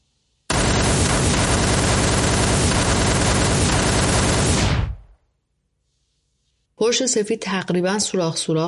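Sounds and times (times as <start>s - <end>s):
dense burst of rapid gunfire: 0.5s - 5.2s
speech: 6.8s - 8.6s.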